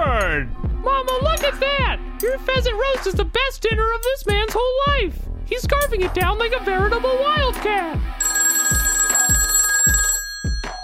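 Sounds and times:
speech: 0:00.4 - 0:08.2
telephone ringing with a bright bell tone: 0:08.2 - 0:10.8.

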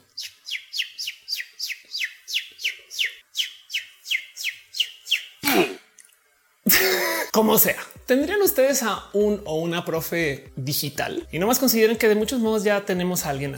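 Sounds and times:
person whistling high downward-sliding chirps imitating a bird: 0:00.2 - 0:05.7
speech: 0:07.4 - 0:13.5.

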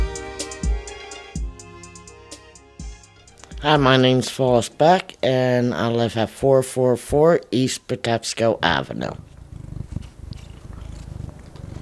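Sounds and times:
speech: 0:03.6 - 0:09.3
young female kitten purring: 0:09.1 - 0:11.8.

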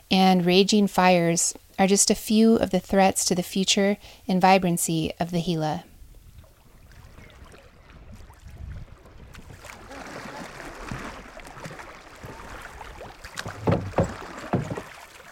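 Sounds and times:
speech: 0:00.1 - 0:05.9
boat paddle splashes and knocks: 0:06.4 - 0:15.3
rushing river current: 0:06.4 - 0:15.3.

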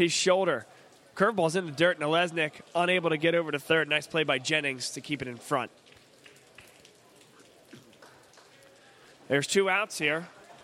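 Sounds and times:
speech: 0:00.0 - 0:05.8, 0:09.3 - 0:10.4
rainwater splashing and pattering through a roof gutter: 0:00.0 - 0:10.6.

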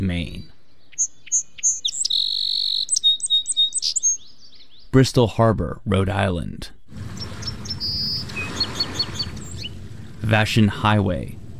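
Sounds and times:
speech: 0:00.1 - 0:00.6, 0:04.9 - 0:06.8, 0:10.2 - 0:11.5
song sparrow singing: 0:00.4 - 0:05.0, 0:06.8 - 0:10.2.

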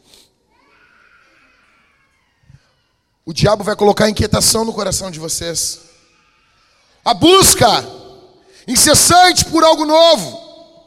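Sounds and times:
young child crying: 0:00.4 - 0:03.2
speech: 0:03.3 - 0:05.9, 0:07.1 - 0:08.0, 0:08.7 - 0:10.4.

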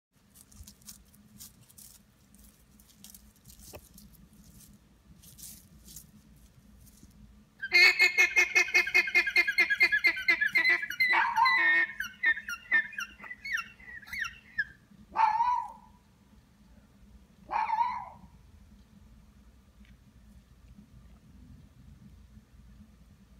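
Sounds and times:
low steady hum: 0:00.2 - 0:23.3
alpaca alarm call on a farm: 0:07.6 - 0:15.9, 0:17.5 - 0:18.3.

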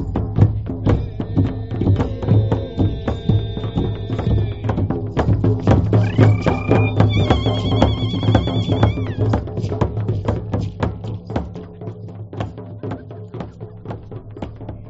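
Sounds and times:
man chanting at a night ceremony: 0:00.0 - 0:10.0
steady rhythmic drumming: 0:00.0 - 0:14.8.

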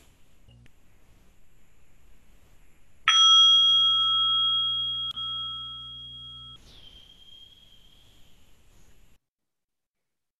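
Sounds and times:
chime struck with bright clear ring: 0:03.1 - 0:08.0.

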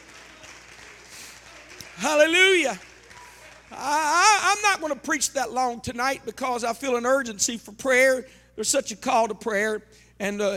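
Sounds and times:
crowd of people clapping their hands: 0:00.0 - 0:04.7
speech: 0:02.0 - 0:02.9, 0:03.7 - 0:10.5.

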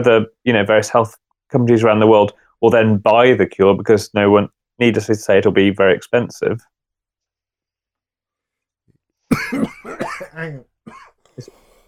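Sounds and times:
speech: 0:00.0 - 0:06.7, 0:09.3 - 0:11.6
person having a coughing fit: 0:09.3 - 0:11.6.

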